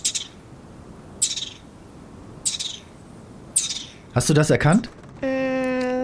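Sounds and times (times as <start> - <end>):
garden dormouse giving shrill raspy whistling calls: 1.2 - 1.6, 2.4 - 2.9, 3.6 - 4.0
speech: 4.2 - 5.3.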